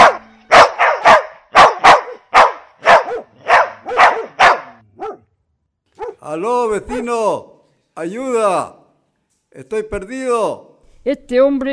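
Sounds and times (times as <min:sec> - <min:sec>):
dogs barking loudly: 0:00.0 - 0:05.3, 0:06.0 - 0:06.2
speech: 0:06.2 - 0:08.8, 0:09.5 - 0:11.7.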